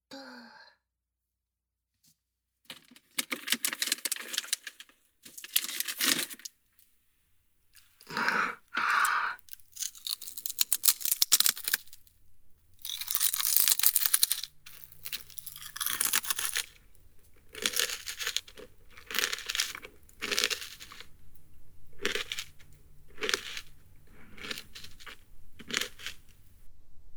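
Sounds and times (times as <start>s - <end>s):
potato chip bag crinkled and torn open: 2.7s - 6.9s, 9.4s - 12.2s, 12.8s - 21.2s, 22.0s - 26.5s
crunching potato chips: 2.8s - 6.9s, 7.8s - 26.6s.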